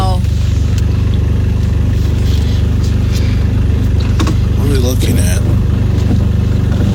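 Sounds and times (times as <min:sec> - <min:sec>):
car engine idling while shifting gears during a three-point turn: 0:00.0 - 0:06.9.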